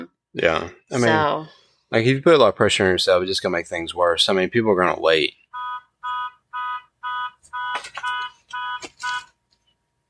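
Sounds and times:
speech: 0.4 - 5.4
car alarm with loud buzzy electronic beeps: 5.5 - 9.4.

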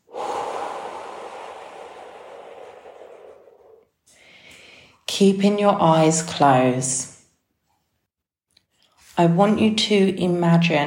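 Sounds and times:
deep breath during a guided relaxation: 0.0 - 5.0
speech: 5.2 - 7.1, 9.2 - 10.8.

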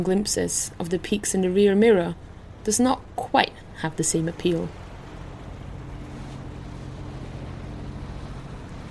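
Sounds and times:
speech: 0.0 - 4.8
wind: 0.0 - 8.9
boat engine droning: 3.6 - 8.9.

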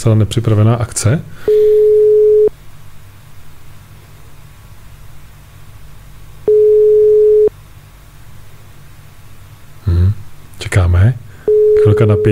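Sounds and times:
speech: 0.0 - 1.5, 12.0 - 12.3
phone ringback tone from an outgoing call: 1.5 - 2.5, 6.5 - 7.5, 11.5 - 12.3.

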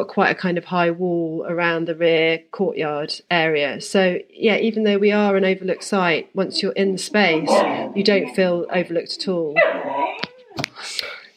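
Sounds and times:
speech: 0.0 - 10.2
breathy noise: 5.2 - 9.6
dog whining: 5.6 - 10.8.

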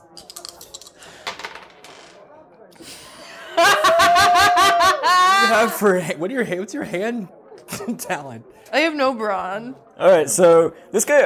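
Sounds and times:
small dice rolling on a hard tabletop: 0.2 - 2.2
people laughing: 2.8 - 6.2, 7.6 - 8.4
speech: 5.5 - 11.2.

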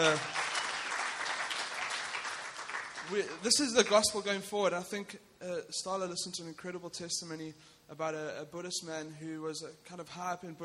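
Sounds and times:
speech: 0.0 - 0.4, 3.1 - 10.6
church congregation clapping: 0.0 - 3.6.

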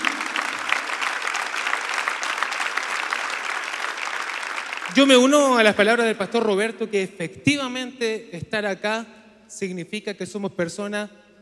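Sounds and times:
audience applauding loudly: 0.0 - 5.3
speech: 5.0 - 11.2.

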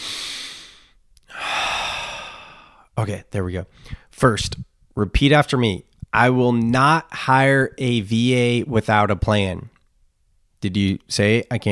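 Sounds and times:
deep breath: 0.0 - 3.0, 3.7 - 4.2
speech: 3.0 - 9.7, 10.6 - 11.7.

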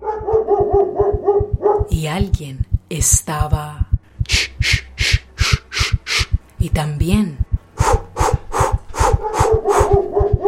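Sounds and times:
dog barking rapidly at night: 0.0 - 1.9, 7.8 - 10.4
speech: 2.0 - 5.2, 6.8 - 7.4.

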